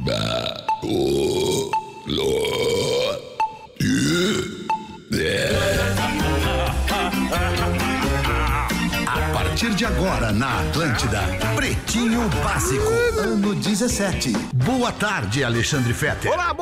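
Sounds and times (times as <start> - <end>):
speech: 0.0 - 2.3, 9.8 - 16.6
loud rumbling burps: 0.0 - 6.0
music: 0.1 - 16.6.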